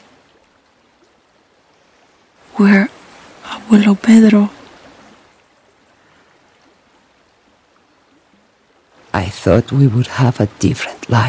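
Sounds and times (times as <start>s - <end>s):
river water rushing: 0.0s - 11.2s
speech: 2.6s - 2.9s, 3.7s - 4.6s, 9.4s - 11.2s.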